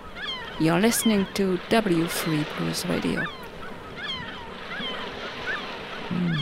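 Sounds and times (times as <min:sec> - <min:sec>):
low boat-like drone: 0:00.0 - 0:06.4
seagulls calling over the water: 0:00.0 - 0:06.4
speech: 0:00.6 - 0:03.4
wash of waves and open water: 0:00.6 - 0:06.4.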